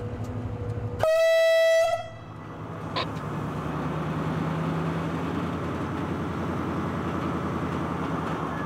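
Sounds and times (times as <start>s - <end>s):
train rolling on a slow shunting run out of a terminal: 0.0s - 8.6s
train horn blast: 1.0s - 2.2s.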